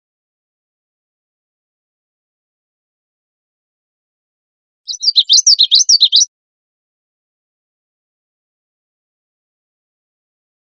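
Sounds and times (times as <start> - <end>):
common yellowthroat singing: 4.9 - 6.3.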